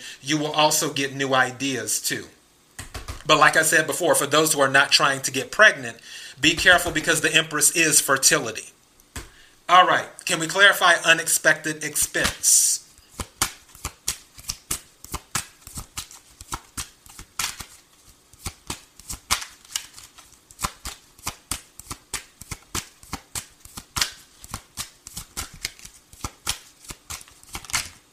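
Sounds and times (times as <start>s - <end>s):
speech: 0.0s - 2.4s, 3.3s - 8.8s, 9.7s - 12.8s
deck of tarot cards shuffling: 12.2s - 28.0s.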